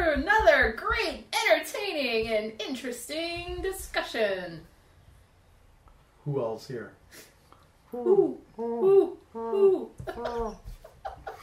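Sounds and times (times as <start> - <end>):
speech: 0.2 - 4.7, 6.3 - 7.3, 7.9 - 10.7
person imitating an owl hooting: 7.9 - 10.6.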